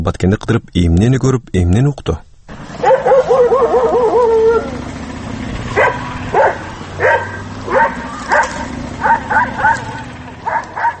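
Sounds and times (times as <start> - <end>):
speech: 0.0 - 2.9
stray dogs barking in the street of a town in Kyrgyzstan: 2.6 - 5.0, 5.6 - 10.9.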